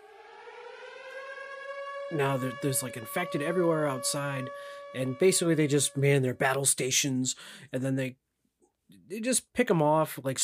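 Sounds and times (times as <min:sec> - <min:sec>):
air raid siren wailing: 0:00.0 - 0:06.6
speech: 0:02.1 - 0:08.2, 0:08.9 - 0:10.4.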